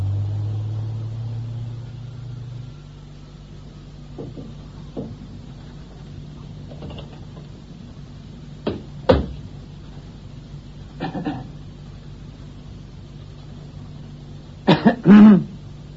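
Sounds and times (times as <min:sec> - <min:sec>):
low steady hum: 0:00.0 - 0:15.9
man clearing his throat: 0:11.0 - 0:11.6, 0:14.6 - 0:15.6
man coughing: 0:11.0 - 0:11.6, 0:14.6 - 0:15.6.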